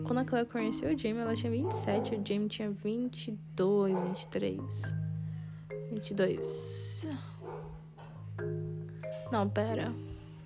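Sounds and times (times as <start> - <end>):
speech: 0.0 - 5.0, 5.9 - 7.3, 9.3 - 10.1
steady low hum: 0.0 - 10.4
small dog barking: 1.6 - 2.3, 3.9 - 4.4, 7.4 - 8.1.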